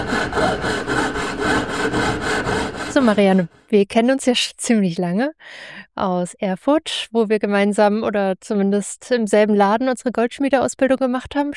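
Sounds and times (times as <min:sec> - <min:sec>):
hand saw cutting through wood: 0:00.0 - 0:03.6
speech: 0:03.0 - 0:11.5.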